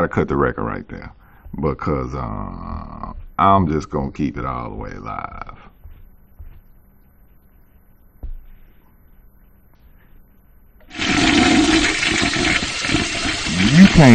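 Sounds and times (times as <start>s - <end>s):
speech: 0.0s - 5.7s, 13.6s - 14.1s
toilet flushing: 10.9s - 14.1s.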